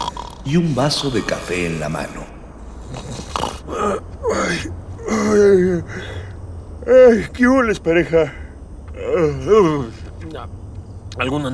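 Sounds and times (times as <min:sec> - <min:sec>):
man snoring while asleep in a parked vehicle in a dark alley: 0:00.0 - 0:06.3
low steady hum: 0:00.0 - 0:11.5
speech: 0:00.4 - 0:06.2, 0:06.9 - 0:08.4, 0:09.0 - 0:10.6, 0:11.2 - 0:11.5.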